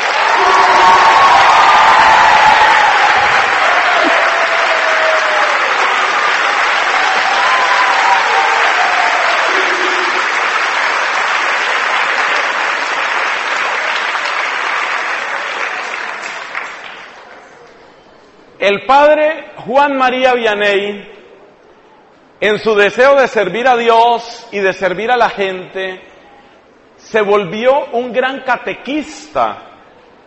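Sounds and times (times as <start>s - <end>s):
large group applauding: 0.0s - 17.8s
speech: 18.8s - 21.1s, 22.4s - 26.1s, 27.0s - 29.7s.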